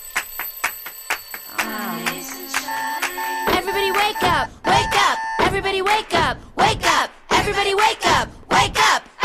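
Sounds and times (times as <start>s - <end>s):
alarm clock ringing: 0.0s - 4.4s
speech: 5.6s - 9.0s.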